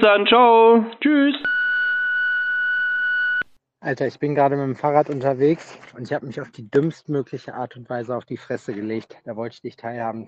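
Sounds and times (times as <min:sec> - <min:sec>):
speech: 0:00.0 - 0:01.6, 0:03.8 - 0:10.2
sustained electronic voicemail beep: 0:01.4 - 0:03.4.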